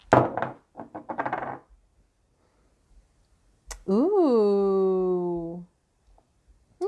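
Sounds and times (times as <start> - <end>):
dice clattering onto a hard surface: 0.1 - 1.6
person exclaiming: 3.9 - 5.6.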